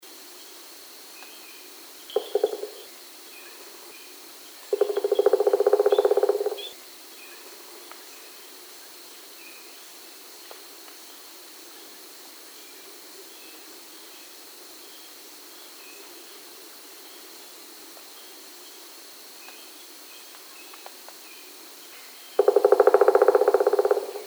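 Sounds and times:
pileated woodpecker: 2.2 - 2.8, 4.7 - 6.7, 22.4 - 24.2.

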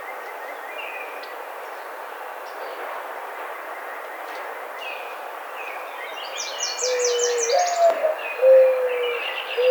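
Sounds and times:
mourning dove cooing: 6.9 - 9.6.

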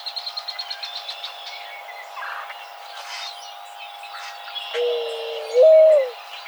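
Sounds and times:
mourning dove coo: 4.7 - 6.4.

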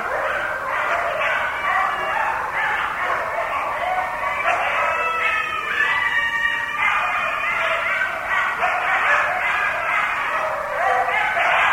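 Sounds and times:
several coyotes yipping and howling in chorus: 0.0 - 11.7.

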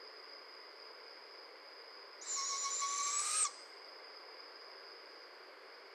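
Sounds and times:
barred owl screech: 2.2 - 3.6.

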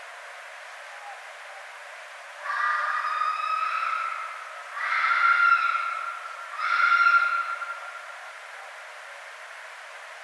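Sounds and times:
red fox scream: 2.4 - 8.0.

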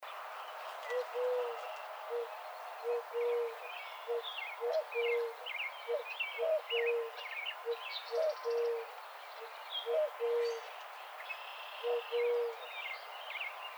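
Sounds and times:
Eurasian Collared Dove cooing: 0.8 - 8.9, 9.8 - 10.7, 11.8 - 12.8.

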